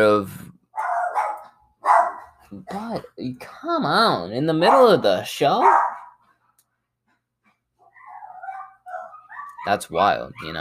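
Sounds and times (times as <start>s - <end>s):
speech: 0.0s - 0.4s, 2.5s - 5.9s, 9.6s - 10.6s
dogs barking and whining: 0.7s - 2.4s, 4.5s - 6.4s, 7.8s - 10.6s.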